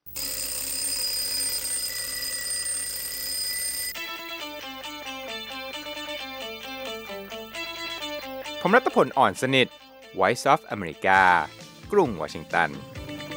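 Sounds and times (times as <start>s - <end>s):
scent-based alarm clock ringing with a metallic bell rattle: 0.1s - 4.0s
scent-based alarm clock playing an electronic melody of bright tones: 0.1s - 8.7s
speech: 8.6s - 12.9s.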